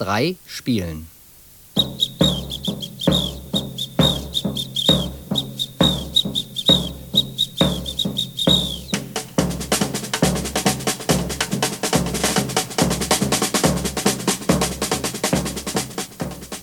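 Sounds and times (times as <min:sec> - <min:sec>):
speech: 0:00.0 - 0:01.1
samba percussion trilling whistle: 0:01.8 - 0:09.1
samba percussion snare drum rattling: 0:01.8 - 0:16.6
samba percussion tom-tom beating: 0:01.8 - 0:16.6.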